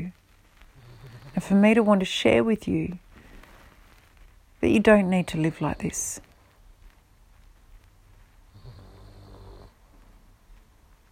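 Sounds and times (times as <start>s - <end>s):
dog snoring: 0.8s - 1.4s, 8.5s - 9.8s
speech: 1.4s - 3.0s, 4.6s - 6.3s.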